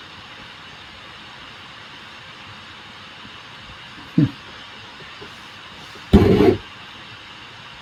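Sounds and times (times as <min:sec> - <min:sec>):
faint white noise hiss from a Mac computer's processor with many programs open: 0:00.0 - 0:07.8
person chuckling: 0:04.0 - 0:04.5, 0:06.2 - 0:06.6
short vocal sound: 0:06.1 - 0:06.6.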